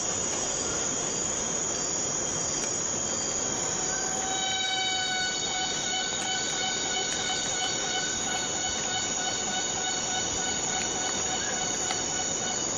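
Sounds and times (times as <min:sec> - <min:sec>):
cicada buzz in Borneo rainforest: 0:00.0 - 0:12.7
dense insect hum in Borneo rainforest: 0:00.0 - 0:12.7
steady whistling tones in Borneo rainforest: 0:11.3 - 0:11.7.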